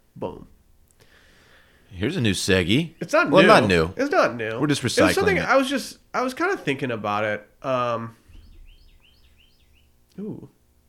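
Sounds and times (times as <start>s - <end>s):
speech: 0.2s - 0.6s, 1.9s - 8.2s, 10.2s - 10.6s
bird chirping: 2.0s - 4.0s, 8.2s - 10.2s.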